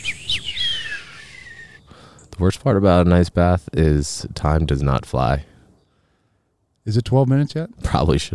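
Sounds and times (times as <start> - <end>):
man whistling a short cartoon melody: 0.0 - 1.8
speech: 2.4 - 5.5, 6.8 - 8.3.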